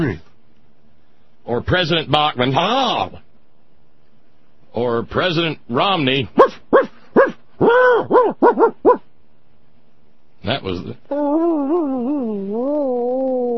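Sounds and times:
speech: 0:00.0 - 0:00.3, 0:01.5 - 0:03.2, 0:04.7 - 0:06.6, 0:07.6 - 0:09.0, 0:10.4 - 0:13.5
dog strapped to the roof of a station wagon barking: 0:06.4 - 0:09.1
dog strapped to the roof of a station wagon whining: 0:06.4 - 0:09.1, 0:11.1 - 0:13.5.

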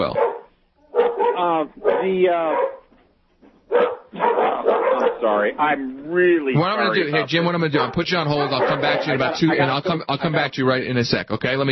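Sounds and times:
speech: 0:00.0 - 0:00.2, 0:01.4 - 0:02.8, 0:05.2 - 0:11.6
dog barking and yowling at a perceived visitor: 0:00.0 - 0:02.9, 0:03.7 - 0:05.5, 0:06.8 - 0:09.7
laughter: 0:06.6 - 0:10.6.

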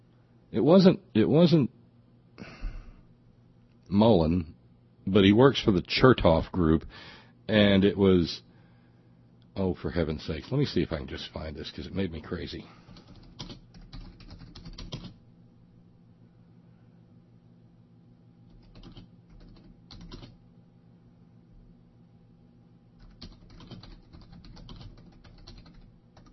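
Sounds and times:
low steady hum: 0:00.0 - 0:26.3
speech: 0:00.5 - 0:01.8, 0:03.9 - 0:08.5, 0:09.6 - 0:12.8
loud clattering computer keyboard typing: 0:12.9 - 0:15.2, 0:18.5 - 0:20.4, 0:23.0 - 0:26.3.

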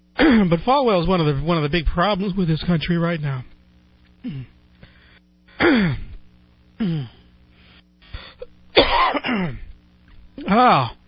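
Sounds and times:
man clearing his throat: 0:00.2 - 0:00.5, 0:04.2 - 0:04.6, 0:05.5 - 0:06.2, 0:06.8 - 0:07.3, 0:08.4 - 0:09.7, 0:10.4 - 0:11.0
man coughing after swallowing wrong: 0:00.2 - 0:00.5, 0:04.2 - 0:04.6, 0:05.5 - 0:06.2, 0:08.2 - 0:09.7
speech: 0:00.4 - 0:03.5, 0:04.2 - 0:04.6, 0:05.6 - 0:06.1, 0:06.8 - 0:07.2, 0:08.9 - 0:09.6, 0:10.4 - 0:11.0.

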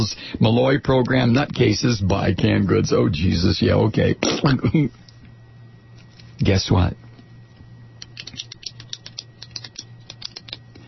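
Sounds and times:
speech: 0:00.0 - 0:05.0, 0:06.4 - 0:07.0
faint low hum: 0:00.0 - 0:10.8
pen clicking: 0:08.0 - 0:10.7.

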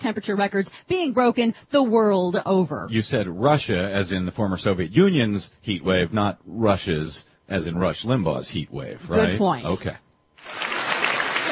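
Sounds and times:
speech: 0:00.0 - 0:10.7
standing ovation clapping from delegates at a UN climate summit in Cancun: 0:10.4 - 0:11.5.

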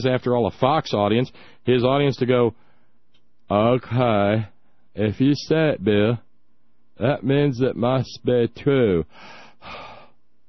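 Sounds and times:
speech: 0:00.0 - 0:02.6, 0:03.5 - 0:06.2, 0:07.0 - 0:09.8
loud breathy exhalation through the mouth: 0:09.1 - 0:10.2.

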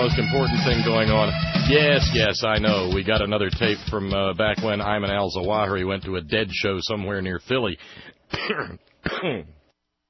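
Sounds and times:
speech: 0:00.0 - 0:09.6
person coughing or clearing throat: 0:08.3 - 0:09.6.

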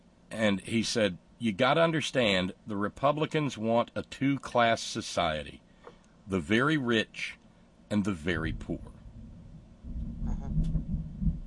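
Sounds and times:
speech: 0:00.4 - 0:05.6, 0:06.3 - 0:09.0
low rolling thunder: 0:08.4 - 0:11.4.

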